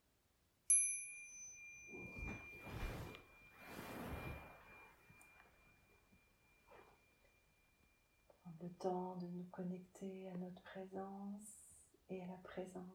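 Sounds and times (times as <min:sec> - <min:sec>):
single bell struck: 0:00.7 - 0:08.4
soft rustling and shuffling movement: 0:01.8 - 0:07.2
speech: 0:08.6 - 0:12.9.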